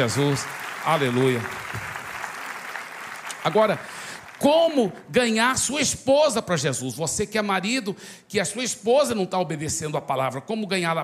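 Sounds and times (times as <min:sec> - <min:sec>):
speech: 0:00.0 - 0:01.9, 0:03.4 - 0:11.0
sizable audience applauding in a room: 0:00.0 - 0:04.8.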